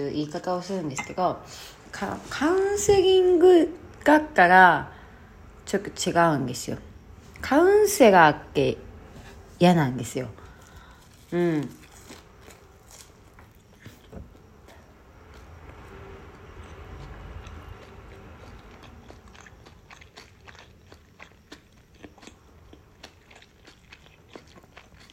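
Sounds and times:
speech: 0.0 - 5.0, 5.7 - 8.9, 9.6 - 10.4, 11.3 - 11.8
quiet chewing of rice with tuna and green onion: 10.4 - 25.1.

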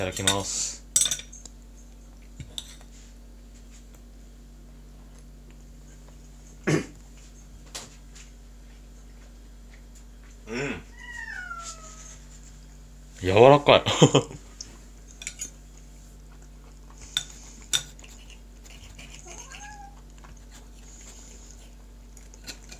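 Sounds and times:
speech: 0.0 - 0.8, 13.2 - 14.4
steady low electrical hum: 0.0 - 22.7
knife and fork clinking and scraping on a plate cutting toast: 2.4 - 3.0, 15.0 - 15.6, 17.0 - 19.6
cat meowing: 10.9 - 12.2, 19.2 - 20.0.

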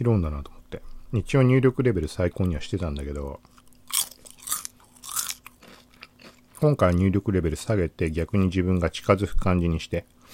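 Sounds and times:
speech: 0.0 - 3.6, 6.6 - 10.2
faint steady electrical hum: 0.0 - 10.3
chewing crunchy food near microphone: 2.4 - 7.3.

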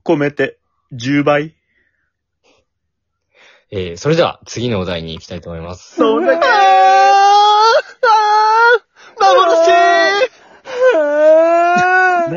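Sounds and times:
speech: 0.1 - 1.6, 3.7 - 7.5, 9.2 - 10.4
person vocally imitating crying with wavering wails: 6.0 - 12.3.

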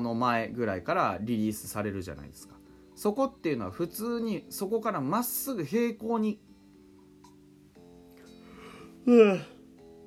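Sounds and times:
speech: 0.0 - 6.5, 9.0 - 9.6
drawn-out voiced yawn from one person: 8.6 - 9.6.

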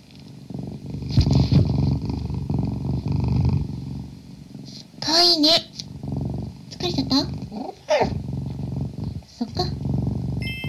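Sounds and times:
cat purring: 0.0 - 10.6
speech: 5.4 - 5.7, 7.1 - 7.4.

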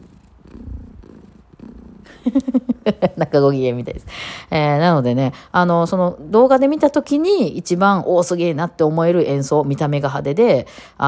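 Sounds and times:
cat purring loudly: 0.0 - 3.4
speech: 2.1 - 11.0.

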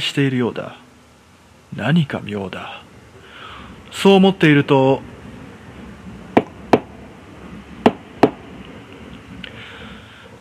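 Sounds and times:
speech: 0.0 - 0.9, 1.7 - 2.9, 3.9 - 5.1
knocking on a front door: 6.4 - 6.9, 7.8 - 8.4.

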